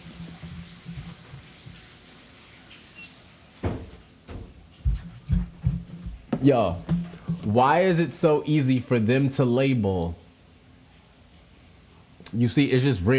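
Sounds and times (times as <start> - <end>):
door being pushed shut: 3.6 - 4.6
speech: 6.4 - 10.2, 12.4 - 13.1.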